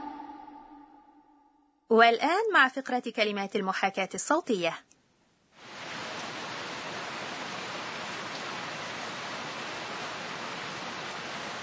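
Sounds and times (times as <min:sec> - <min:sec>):
speech: 0:01.9 - 0:04.9
heavy rain falling: 0:05.6 - 0:11.6.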